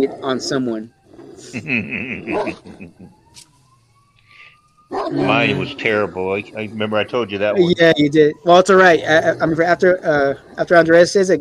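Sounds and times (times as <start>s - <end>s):
speech: 0.0s - 3.5s, 4.9s - 11.4s
laughter: 1.4s - 3.1s
dogs barking and yelping with whiny high-pitched tones: 2.2s - 2.9s, 4.8s - 5.5s.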